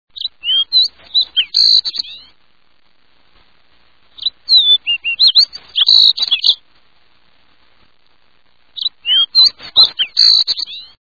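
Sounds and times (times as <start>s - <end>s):
Fox Sparrow singing: 0.1s - 2.4s, 4.1s - 6.6s, 8.8s - 11.0s.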